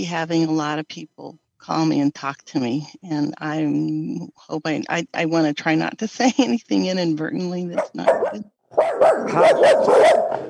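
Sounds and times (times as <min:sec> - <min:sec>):
speech: 0:00.0 - 0:10.4
dog barking in sharp high-pitched yaps: 0:07.8 - 0:10.4.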